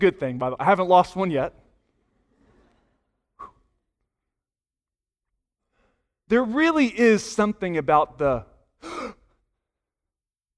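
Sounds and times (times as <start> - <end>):
speech: 0.0 - 1.6, 6.3 - 9.2
faint trailing exhale: 2.4 - 3.8
person gasping for air: 8.8 - 9.4.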